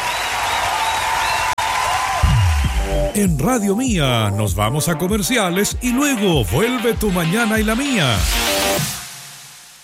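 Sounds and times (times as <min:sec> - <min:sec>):
cheering: 0:00.0 - 0:03.2
crowd applause: 0:00.0 - 0:03.2
speech: 0:03.2 - 0:08.9.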